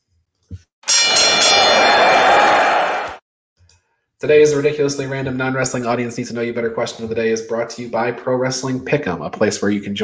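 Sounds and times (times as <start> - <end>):
wrestling ring bell clanging: 0.8 - 3.0
speech: 4.2 - 10.0.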